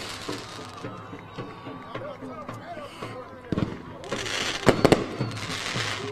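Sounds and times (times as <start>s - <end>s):
fireworks cracking and booming: 0.0s - 0.9s, 3.5s - 6.0s
noisy crowd voices and commotion: 0.0s - 6.0s.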